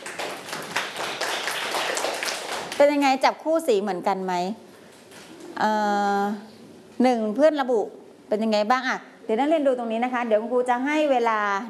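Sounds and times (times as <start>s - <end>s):
school class clapping hands in applause: 0.0s - 3.2s
speech: 2.8s - 4.7s, 5.6s - 11.6s.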